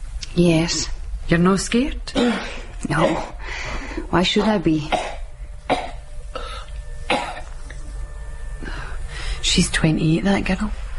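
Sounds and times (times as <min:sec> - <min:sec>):
low steady hum: 0:00.0 - 0:10.9
speech: 0:00.4 - 0:05.8, 0:09.6 - 0:10.8
woman coughing harshly: 0:02.1 - 0:03.4, 0:04.4 - 0:07.5.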